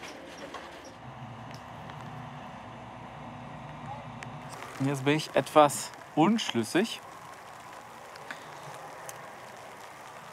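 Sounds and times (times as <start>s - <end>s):
light drizzle falling outdoors: 1.0s - 10.3s
speech: 4.8s - 7.0s.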